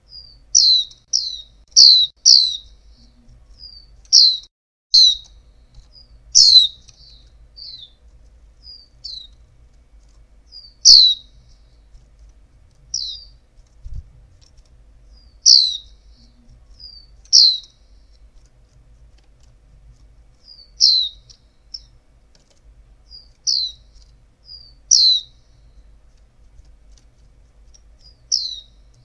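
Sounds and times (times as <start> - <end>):
female white-eye downward-slurred chirps: 0.0 - 8.0, 8.6 - 9.4, 10.5 - 11.8, 12.9 - 13.4, 15.1 - 18.2, 20.4 - 22.0, 23.1 - 25.9, 28.0 - 29.0
low background rumble: 0.0 - 29.0.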